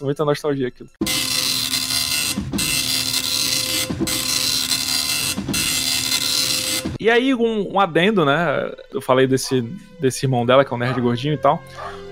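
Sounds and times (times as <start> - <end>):
speech: 0.0 - 1.6, 4.0 - 4.4, 7.0 - 12.0
dot matrix printer printing: 1.0 - 7.0.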